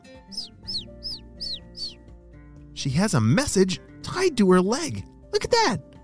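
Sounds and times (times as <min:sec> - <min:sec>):
bird chirping: 0:00.3 - 0:02.0
speech: 0:02.8 - 0:05.9.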